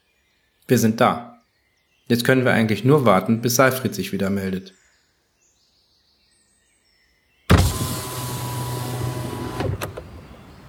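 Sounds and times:
speech: 0.7 - 1.3, 2.1 - 4.8
car window winding down with a motorized whir: 7.5 - 10.6
soft clunk and rattle of the car window stopping: 7.5 - 10.6.

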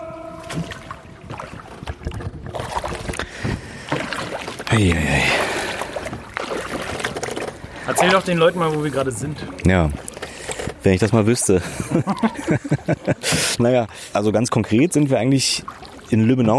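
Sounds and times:
voices calling out: 0.0 - 1.2, 7.7 - 16.5
canoe paddle strokes splashing and swishing through water: 0.0 - 16.5
speech: 4.7 - 5.4, 7.9 - 10.1, 10.8 - 16.5
laughter: 11.6 - 13.8.

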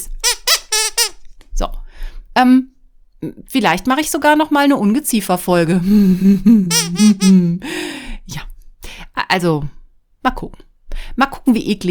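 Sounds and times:
speech: 1.6 - 1.8, 2.4 - 8.4, 9.2 - 11.9
person making high-pitched vocal squeaks: 6.6 - 7.6.

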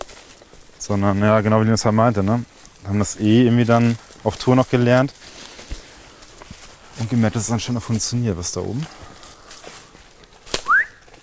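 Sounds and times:
speech: 0.8 - 5.4, 7.0 - 9.0
person whistling as a signal for a mushroom find: 10.6 - 11.0.

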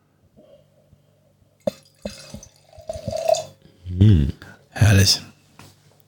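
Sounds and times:
wine pouring into a glass: 1.6 - 3.6
glass clinks: 1.7 - 3.5
speech: 5.0 - 5.3.

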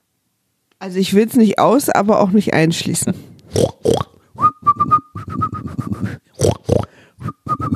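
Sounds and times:
speech: 0.8 - 4.1
person whistling a bouncy pop tune: 4.4 - 6.2, 7.2 - 7.7
rough snorting grunt-like bursts: 6.4 - 6.9.

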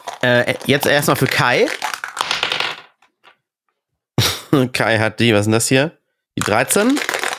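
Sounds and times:
dice rolled across a hard surface: 0.0 - 3.4, 6.4 - 7.3
speech: 0.2 - 1.9, 4.5 - 7.1.

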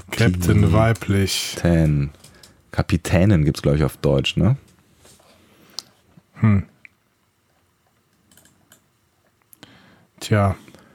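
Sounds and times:
speech: 0.2 - 4.6, 6.4 - 6.7, 10.2 - 10.6
typing on a computer keyboard: 8.3 - 8.8.

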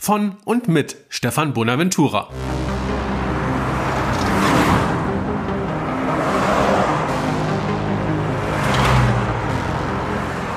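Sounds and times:
speech: 0.0 - 2.8
cars passing on a busy street: 2.3 - 10.5.

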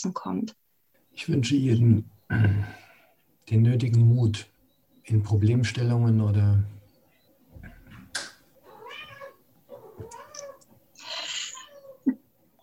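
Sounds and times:
speech: 0.0 - 0.6, 1.2 - 2.8, 3.5 - 4.5, 5.1 - 6.8
cat meowing: 8.6 - 12.1.

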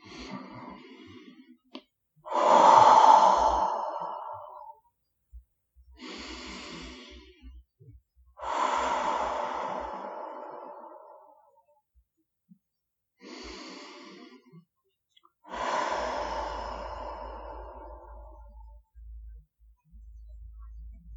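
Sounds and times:
slow deep breaths in through nose out mouth: 0.0 - 1.6, 2.3 - 4.8, 6.0 - 7.6, 8.4 - 11.6, 15.4 - 18.8.

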